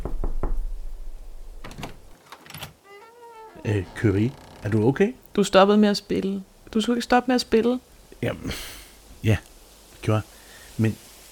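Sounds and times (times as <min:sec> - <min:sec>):
sharp knocks on a wooden door frame: 0:00.0 - 0:00.6
scraping rattling movement: 0:01.6 - 0:05.2
short high squeak: 0:02.8 - 0:04.6
speech: 0:03.7 - 0:11.0.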